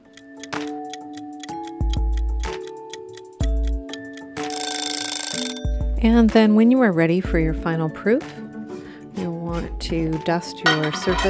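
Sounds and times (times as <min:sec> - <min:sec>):
kitchen timer ticking: 0:00.0 - 0:05.8
speech: 0:06.0 - 0:08.4, 0:09.6 - 0:11.2.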